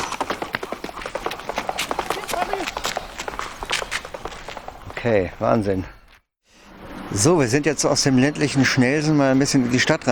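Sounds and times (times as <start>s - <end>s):
small guide horse galloping hoofbeats on hard ground: 0.0s - 5.7s
jogging person's running footsteps on hard ground: 0.0s - 6.2s
speech: 5.0s - 6.0s, 7.1s - 10.1s.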